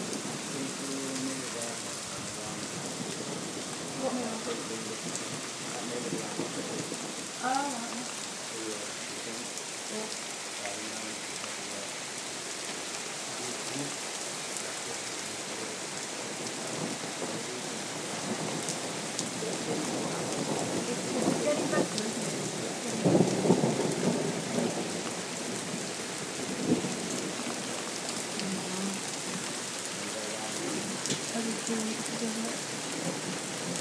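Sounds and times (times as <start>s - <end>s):
deep rolls of thunder rumbling: 0.0s - 9.4s, 15.4s - 33.7s
storm wind: 0.0s - 33.7s
torrential rain pouring during a storm: 0.0s - 33.7s.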